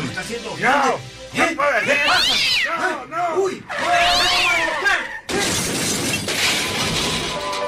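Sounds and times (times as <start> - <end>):
speech: 0.2 - 5.1
cat yowling: 2.0 - 2.7, 3.7 - 5.2
crashing and shattering din: 5.3 - 7.6.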